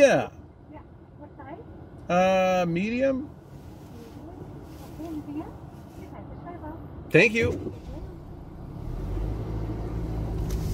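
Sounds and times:
speech: 0:00.0 - 0:00.4, 0:02.1 - 0:03.4, 0:07.1 - 0:07.8
car engine rumble driving up to a drive-through window: 0:00.0 - 0:10.7.

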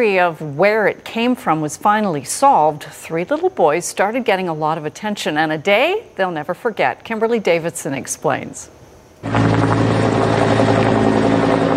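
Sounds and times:
speech: 0:00.0 - 0:09.8
helicopter flying overhead: 0:09.2 - 0:11.7.

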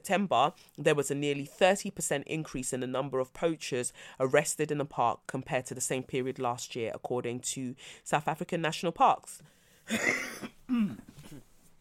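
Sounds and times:
speech: 0:00.0 - 0:11.4
harsh rasping coughing: 0:09.9 - 0:11.5
faint throat sounds: 0:10.7 - 0:11.5.

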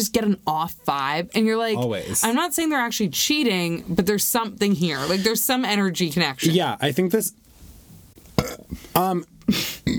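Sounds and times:
speech: 0:00.0 - 0:07.5, 0:08.4 - 0:09.8
loud burp with croaky rumble: 0:08.4 - 0:08.7.

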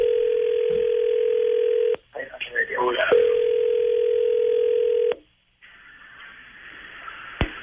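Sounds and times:
electronic telephone ringback tone: 0:00.0 - 0:02.0, 0:03.1 - 0:05.2.

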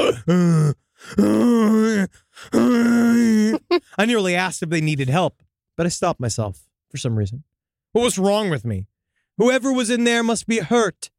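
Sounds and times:
person groaning inside a toilet stall: 0:00.0 - 0:03.8
speech: 0:00.3 - 0:11.1.

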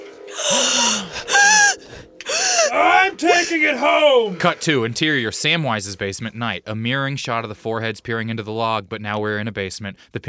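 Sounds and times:
people gasping: 0:00.3 - 0:02.8
speech: 0:03.2 - 0:10.2.

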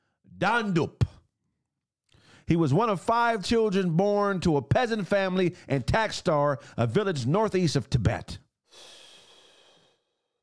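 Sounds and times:
speech: 0:00.4 - 0:01.0, 0:02.5 - 0:09.0
long breathy exhale: 0:08.7 - 0:10.4.

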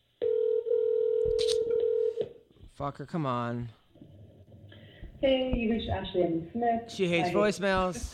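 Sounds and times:
phone ringback tone while a call connects: 0:00.2 - 0:02.2
speech: 0:02.8 - 0:03.8, 0:05.2 - 0:08.1.

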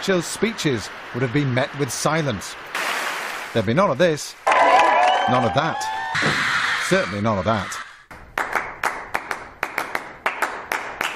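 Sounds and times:
speech: 0:00.0 - 0:02.8, 0:03.6 - 0:04.4, 0:05.3 - 0:07.8
hand claps in a syncopated rhythm: 0:08.3 - 0:11.1.

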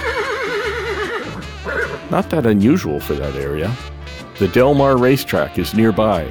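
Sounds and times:
horse whinnying with a long quavering neigh: 0:00.0 - 0:02.3
speech: 0:02.1 - 0:06.2.

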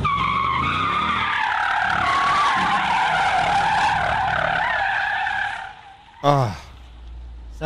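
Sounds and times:
tires of a heavy Jeep skidding on concrete: 0:00.0 - 0:07.3
speech: 0:06.2 - 0:06.6.

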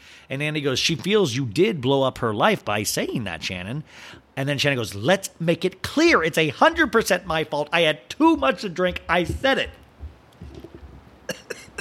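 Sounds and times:
speech: 0:00.3 - 0:09.8
harsh coughing fit: 0:11.3 - 0:11.7.

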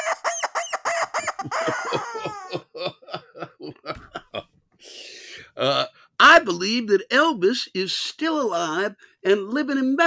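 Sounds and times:
rubber chicken toy squawking: 0:00.0 - 0:02.6
laughter: 0:01.0 - 0:04.4
speech: 0:05.6 - 0:10.0.

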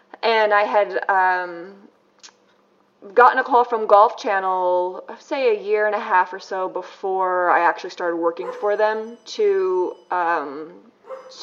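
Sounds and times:
speech: 0:00.3 - 0:01.9, 0:03.0 - 0:11.4
dog bark: 0:08.4 - 0:09.0, 0:11.0 - 0:11.4.

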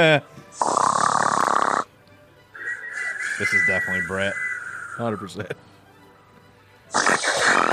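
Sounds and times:
speech: 0:00.0 - 0:00.8, 0:03.4 - 0:04.4, 0:05.0 - 0:05.7
loud raspy rattling snore: 0:00.6 - 0:01.9, 0:06.9 - 0:07.7.

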